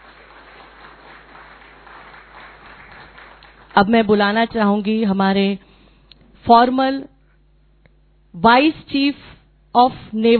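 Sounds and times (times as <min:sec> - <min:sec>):
crowd applauding: 0:00.0 - 0:04.0
speech: 0:03.8 - 0:05.7, 0:06.4 - 0:07.1, 0:08.4 - 0:10.3.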